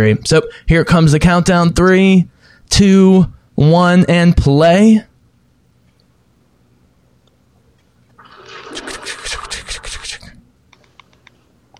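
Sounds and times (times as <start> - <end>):
speech: 0.0 - 5.1
shower water spraying with a coarse hiss: 8.2 - 9.8.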